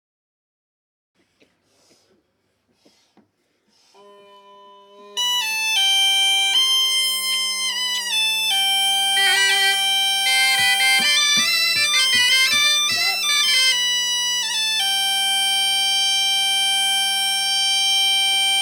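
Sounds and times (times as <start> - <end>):
bombarde: 5.2 - 18.6.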